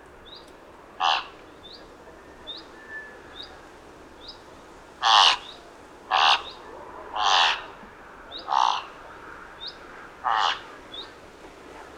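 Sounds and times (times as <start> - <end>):
Thick-billed raven giving harsh grating caws: 1.0 - 1.3, 5.0 - 5.4, 6.1 - 6.5, 7.2 - 7.6, 8.5 - 8.9, 10.2 - 10.7.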